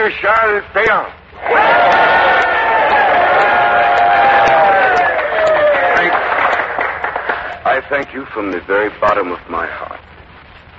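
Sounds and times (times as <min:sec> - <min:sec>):
speech: 0:00.1 - 0:02.2, 0:07.8 - 0:10.1
large crowd of men cheering and shouting: 0:01.4 - 0:07.6
scattered claps: 0:01.6 - 0:08.7.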